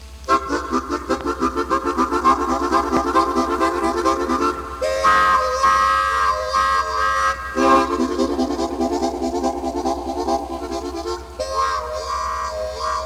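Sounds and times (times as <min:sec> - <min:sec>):
musical imitation of a train with chugging harmonic tones and whistle-like chords: 0:00.0 - 0:13.0.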